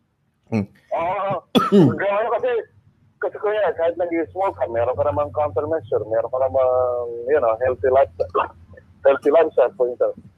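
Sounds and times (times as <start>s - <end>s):
speech: 0.5s - 10.3s
person coughing: 1.5s - 2.0s.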